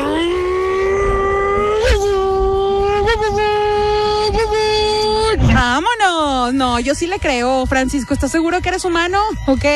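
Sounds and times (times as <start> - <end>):
person imitating a roaring car engine: 0.0 - 5.6
speech: 6.5 - 9.7.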